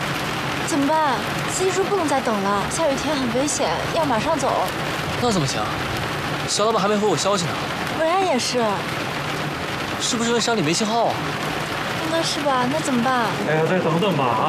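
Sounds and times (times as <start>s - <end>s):
steady rain hissing: 0.0s - 14.4s
people talking: 0.7s - 5.8s, 6.5s - 8.8s, 12.0s - 14.4s.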